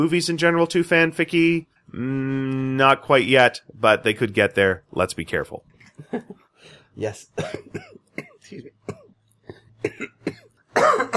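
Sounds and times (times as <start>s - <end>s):
speech: 0.0s - 9.0s, 9.8s - 11.1s
person coughing harshly: 7.4s - 11.1s.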